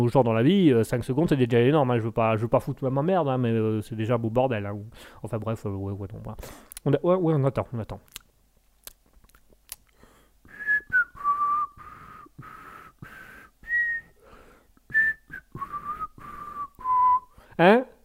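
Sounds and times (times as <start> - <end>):
speech: 0.0 - 8.2, 17.6 - 17.9
person whistling a wandering melody: 10.5 - 12.5, 13.6 - 14.2, 14.9 - 17.4.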